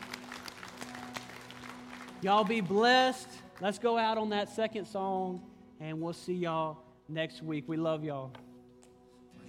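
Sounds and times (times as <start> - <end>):
audience clapping at a church service: 0.0 - 3.8
speech: 2.2 - 8.5.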